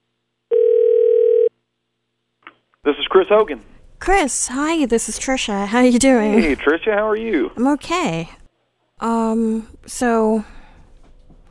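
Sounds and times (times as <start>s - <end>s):
electronic telephone ring tone on the line: 0.5s - 1.5s
speech: 2.8s - 8.4s, 9.0s - 10.6s.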